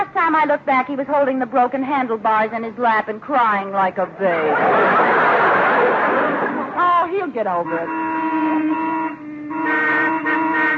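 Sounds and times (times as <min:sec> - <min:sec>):
speech: 0:00.3 - 0:05.0, 0:06.8 - 0:08.2
laughter: 0:04.1 - 0:07.1
car horns honking in heavy traffic: 0:06.8 - 0:10.7.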